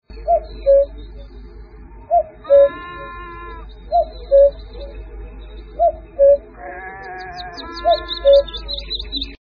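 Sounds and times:
cuckoo alarm call: 0:00.2 - 0:01.4, 0:02.0 - 0:09.4
sheep bleating: 0:02.6 - 0:03.7, 0:06.5 - 0:08.7.

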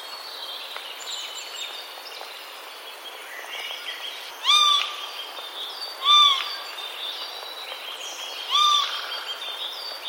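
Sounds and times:
faint background hiss: 0:00.0 - 0:10.0
Eurasian jay calls: 0:03.3 - 0:10.0.

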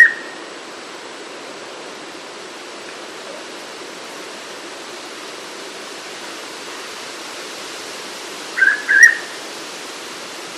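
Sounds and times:
faint hiss: 0:00.0 - 0:10.5
Hooded pitta double whistle: 0:08.6 - 0:09.3.

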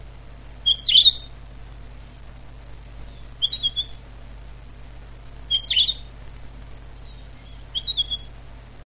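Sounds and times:
pine grosbeak whistled calls: 0:00.6 - 0:01.3, 0:03.1 - 0:04.0, 0:05.5 - 0:06.1, 0:07.0 - 0:08.4.

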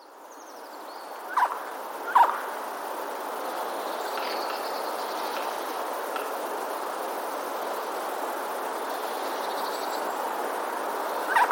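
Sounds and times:
steady background hiss: 0:00.0 - 0:11.5
Eurasian jay alarm calls: 0:11.3 - 0:11.5.

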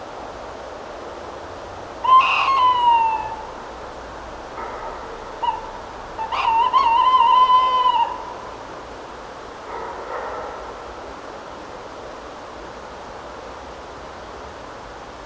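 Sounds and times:
tawny owl Strix aluco hooting: 0:02.0 - 0:03.8, 0:05.0 - 0:08.7.

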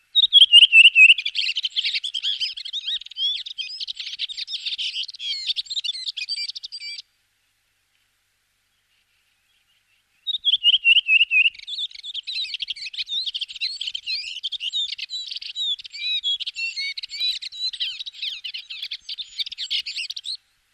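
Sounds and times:
redwing singing: 0:00.0 - 0:07.0, 0:08.7 - 0:20.4.

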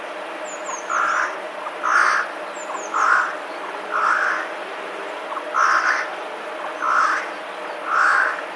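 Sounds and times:
small birds giving light high-pitched twitters: 0:00.0 - 0:08.5
Eurasian jay giving rough scolding alarm screeches: 0:00.7 - 0:04.6, 0:05.3 - 0:06.1, 0:06.8 - 0:08.4.

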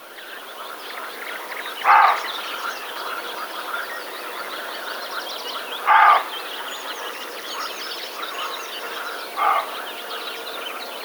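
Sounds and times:
songbirds chirping softly: 0:00.0 - 0:11.0
roe deer Capreolus capreolus short rough bark: 0:05.9 - 0:06.3, 0:09.4 - 0:09.8.

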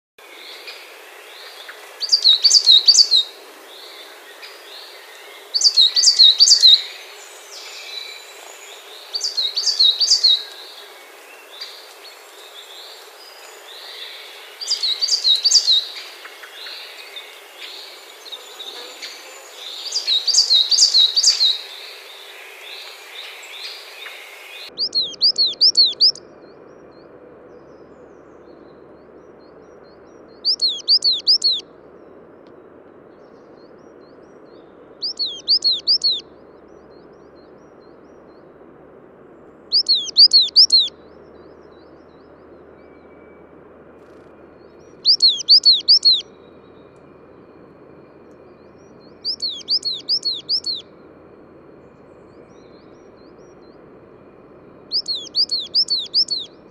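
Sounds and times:
Periparus ater coal tit calling: 0:01.4 - 0:26.2, 0:30.4 - 0:31.6, 0:35.0 - 0:36.2, 0:39.7 - 0:40.9, 0:45.0 - 0:46.3, 0:49.1 - 0:50.8, 0:54.9 - 0:56.5.

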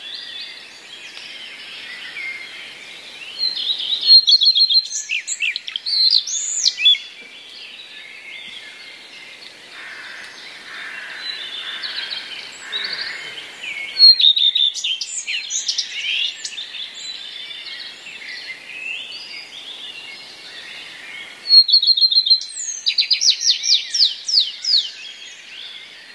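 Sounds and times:
common redstart singing with mimicry of other passerine birds: 0:03.2 - 0:09.5, 0:11.2 - 0:26.1.

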